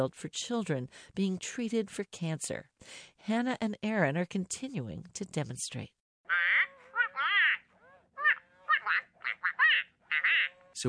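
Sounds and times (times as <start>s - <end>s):
speech: 0.0s - 6.0s
robotic toy duck quacking: 6.3s - 10.7s.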